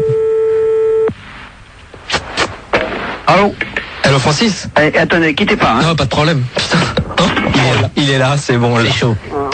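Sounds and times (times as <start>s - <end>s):
telephone ringback tone after a number is dialed: 0.0s - 1.1s
speech: 3.3s - 9.4s.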